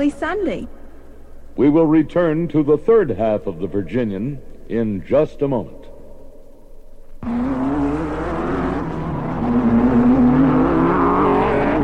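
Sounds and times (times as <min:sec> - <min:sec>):
speech: 0:00.0 - 0:00.8, 0:01.6 - 0:05.8
race car engines roaring at a speedway: 0:07.2 - 0:11.8.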